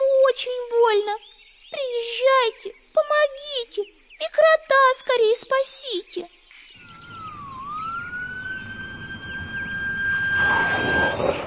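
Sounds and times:
speech: 0:00.4 - 0:06.4
ambulance siren wailing: 0:06.8 - 0:11.4
rushing noise: 0:06.8 - 0:11.4.

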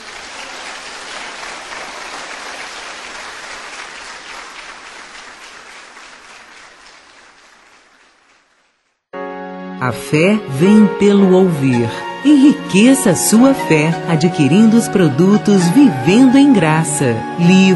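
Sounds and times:
congregation applauding during a sermon: 0:00.0 - 0:09.0
speech: 0:09.8 - 0:17.7.

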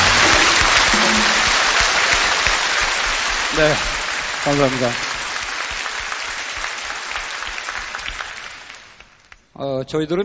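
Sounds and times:
audience applause at an orchestra concert: 0:00.0 - 0:09.4
speech: 0:03.6 - 0:05.1, 0:09.6 - 0:10.2.

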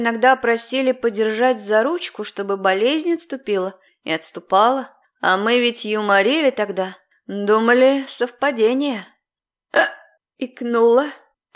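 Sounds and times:
speech: 0:00.0 - 0:09.1, 0:09.7 - 0:11.5
woman hiccuping: 0:09.7 - 0:10.2.

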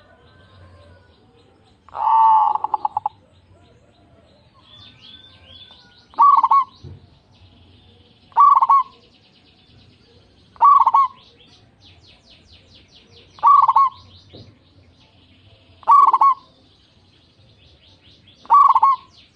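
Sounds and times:
zebra dove local strain cooing: 0:01.9 - 0:04.3, 0:05.4 - 0:06.8, 0:08.3 - 0:09.0, 0:10.6 - 0:11.5, 0:13.3 - 0:14.1, 0:15.8 - 0:16.6, 0:18.4 - 0:19.1
small bird twittering: 0:04.8 - 0:06.9, 0:07.6 - 0:09.1, 0:10.5 - 0:14.4, 0:15.8 - 0:16.5, 0:17.8 - 0:19.3.

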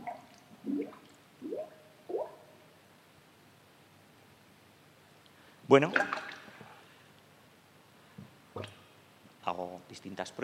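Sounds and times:
underwater bubble sound effect with gurgling bloops: 0:00.0 - 0:02.4
speech: 0:05.7 - 0:06.2, 0:10.1 - 0:10.4.

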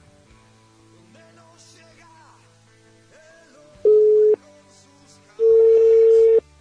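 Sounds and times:
telephone line beeps during a call: 0:03.9 - 0:04.4, 0:05.4 - 0:06.4.

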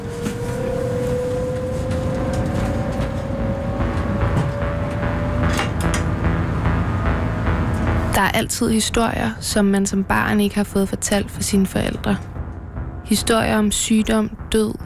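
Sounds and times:
train motor whine rising in pitch: 0:00.0 - 0:08.1
train pulling out of Valby station toward Frederikssund: 0:00.0 - 0:14.8
speech: 0:08.3 - 0:12.3, 0:13.1 - 0:14.8.

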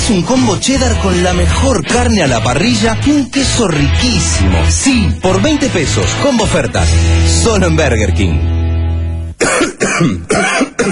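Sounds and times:
speech: 0:00.1 - 0:08.6, 0:09.4 - 0:10.9
person coughing harshly: 0:09.4 - 0:10.9.

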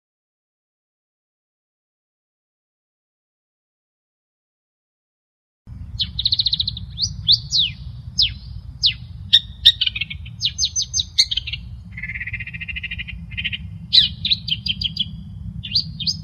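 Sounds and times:
long-tailed shrike singing: 0:05.7 - 0:16.2
low steady hum: 0:05.7 - 0:16.2.

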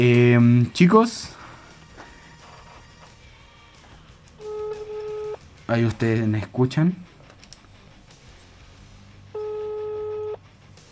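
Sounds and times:
speech: 0:00.0 - 0:01.4, 0:05.7 - 0:07.1
telephone ringback tone while a call is dialed: 0:04.4 - 0:05.4, 0:09.4 - 0:10.4.

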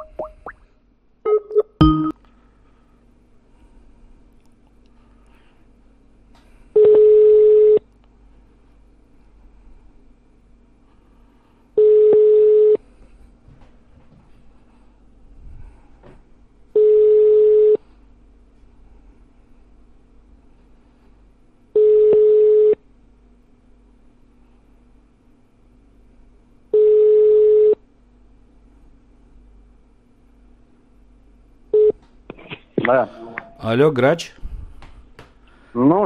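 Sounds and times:
faint hum: 0:00.0 - 0:36.0
telephone ringback tones: 0:06.8 - 0:07.8, 0:11.8 - 0:12.8, 0:16.8 - 0:17.8, 0:21.8 - 0:22.8, 0:26.8 - 0:27.8
speech: 0:32.9 - 0:34.4, 0:35.8 - 0:36.0.

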